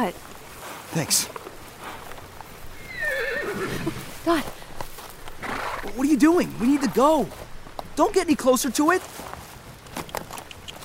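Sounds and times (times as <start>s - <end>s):
speech: 0.0s - 0.3s, 0.9s - 1.4s, 3.8s - 4.6s, 6.0s - 7.4s, 8.0s - 9.3s
soft shuffling: 0.0s - 2.9s, 3.8s - 10.1s
faint hoof clops: 0.0s - 10.8s
horse whinnying: 2.7s - 4.3s, 5.4s - 6.9s.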